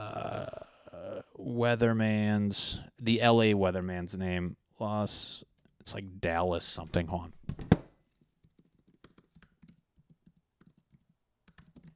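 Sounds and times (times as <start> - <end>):
speech: 1.6 - 7.4
typing on a computer keyboard: 8.4 - 11.9.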